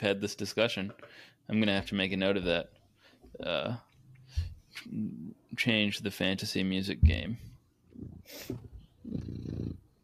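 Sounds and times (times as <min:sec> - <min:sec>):
speech: 0:00.0 - 0:09.8
cat purring: 0:07.9 - 0:10.0.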